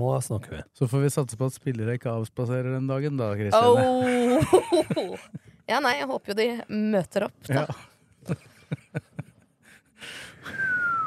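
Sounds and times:
speech: 0.0s - 8.5s
laughter: 3.6s - 5.4s, 7.5s - 9.4s
sharp heavy breaths and noisy hissing exhale: 9.6s - 10.7s.

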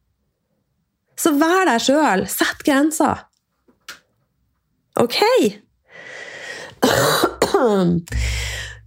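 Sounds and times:
speech: 1.2s - 3.3s, 5.0s - 6.1s, 6.9s - 8.6s
harsh raspy coughs: 6.8s - 8.8s.

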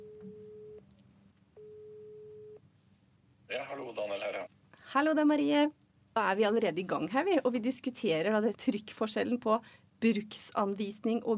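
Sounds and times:
telephone ringback tone as a call is placed: 0.0s - 0.8s, 1.6s - 2.6s
low hum: 0.0s - 11.3s
speech: 3.7s - 11.3s.

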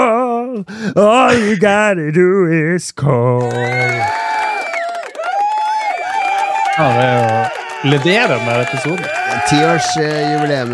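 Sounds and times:
speech: 0.6s - 4.3s, 6.8s - 10.7s
audience cheering and whooping: 3.4s - 10.7s
audience clapping: 3.4s - 10.7s
high shouts: 3.4s - 10.7s.

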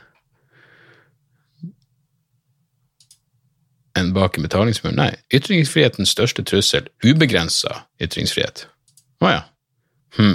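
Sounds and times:
computer mouse clicks: 3.0s - 3.2s, 8.8s - 9.1s
speech: 4.0s - 9.5s, 10.1s - 10.3s.

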